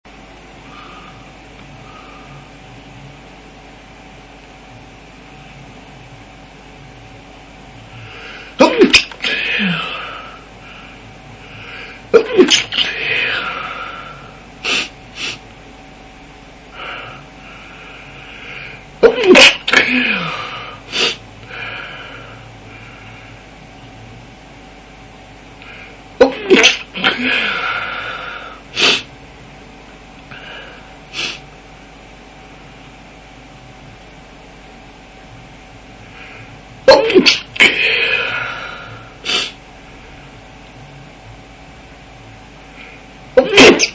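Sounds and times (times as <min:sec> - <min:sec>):
man stifling a sound: 0:08.0 - 0:15.4, 0:18.4 - 0:22.4, 0:25.6 - 0:29.1, 0:30.3 - 0:31.4, 0:36.2 - 0:39.6, 0:42.8 - 0:43.9.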